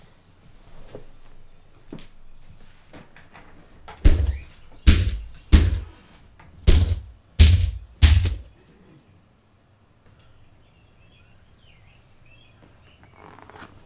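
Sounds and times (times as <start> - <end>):
faint noise: 0.0 - 13.8
heavy pounding on a door: 4.0 - 6.0, 6.6 - 8.5.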